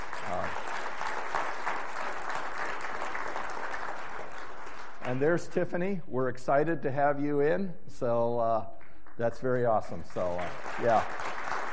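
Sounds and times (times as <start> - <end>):
audience applause at a meeting: 0.0 - 5.2, 10.2 - 11.7
speech: 5.1 - 11.2.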